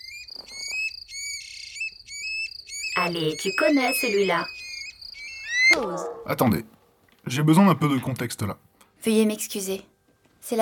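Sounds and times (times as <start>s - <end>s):
recording of a song thrush singing: 0.0s - 6.3s
speech: 3.1s - 4.6s, 5.7s - 10.6s.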